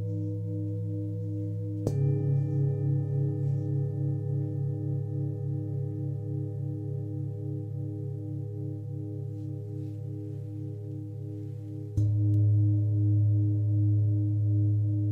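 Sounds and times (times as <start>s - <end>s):
deep warm singing bowl tones: 0.0s - 15.0s
singing bowl strike: 1.2s - 12.7s.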